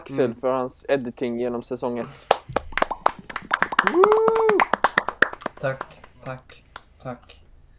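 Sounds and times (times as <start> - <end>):
speech: 0.0 - 2.6, 5.6 - 7.4
hands clapping in quick uneven bursts: 2.1 - 7.4
short sustained vocal whoop: 3.8 - 4.7.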